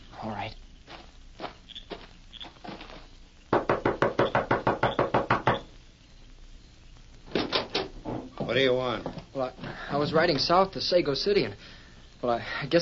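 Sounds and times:
speech: 0.2 - 0.6, 8.5 - 12.7
knocking on a door: 3.5 - 5.6.

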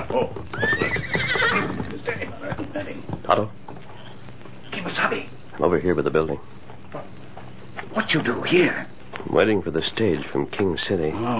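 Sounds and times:
loud drawn-out paint horse whinny: 0.0 - 2.5
paint horse hoofbeats clip-clopping: 0.0 - 10.7
speech: 0.1 - 0.8, 2.9 - 3.6, 5.1 - 6.6, 8.0 - 11.3.

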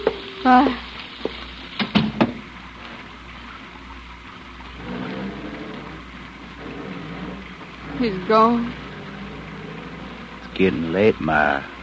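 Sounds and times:
steady rain falling: 0.0 - 11.8
speech: 0.4 - 1.4, 8.0 - 8.8, 10.6 - 11.8
sharp knocks: 1.8 - 2.4.

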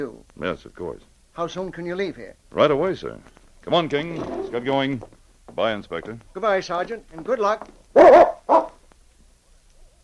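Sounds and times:
speech: 0.0 - 8.6
dog barking: 8.0 - 8.8.

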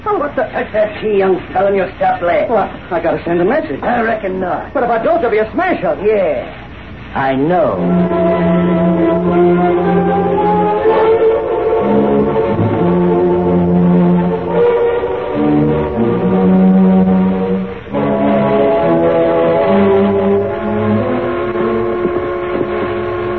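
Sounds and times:
speech: 0.1 - 10.3
eastbound train whistle blasts: 7.7 - 23.3.

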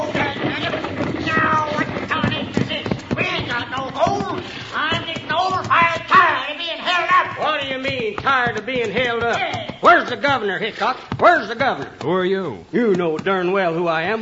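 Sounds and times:
stagecoach wheels rumbling: 0.0 - 6.3
several people shouting and talking: 0.0 - 12.2
stagecoach horses' hooves clip-clopping: 0.0 - 14.1
speech: 8.5 - 14.1.

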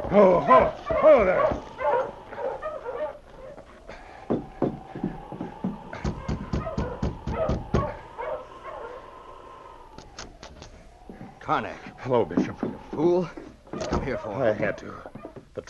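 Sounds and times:
sled dog team barking excitedly in front of a cabin: 0.0 - 10.1, 10.8 - 15.6
speech: 0.1 - 1.7, 11.5 - 15.6.

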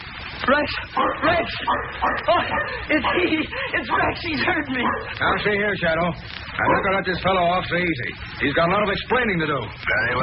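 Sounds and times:
speech: 0.5 - 10.2
dog barking and yipping in a car: 0.8 - 5.7, 6.6 - 7.2.

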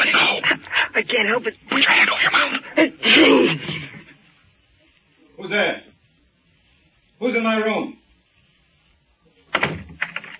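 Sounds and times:
speech: 1.0 - 3.7, 5.4 - 5.8, 7.2 - 8.0
door shutting: 9.5 - 10.3.

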